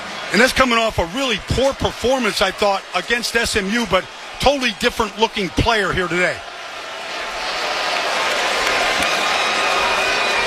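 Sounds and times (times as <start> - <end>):
large stunned stadium crowd murmuring at a college football game: 0.0 - 10.4
speech: 0.3 - 6.5.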